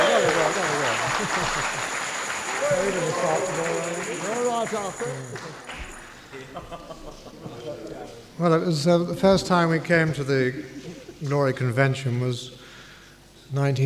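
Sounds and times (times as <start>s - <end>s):
laughter: 0.0s - 5.7s, 6.3s - 7.7s, 10.4s - 11.3s
crowd applauding: 0.0s - 6.4s
speech: 1.3s - 1.9s, 2.7s - 12.6s, 13.5s - 13.8s.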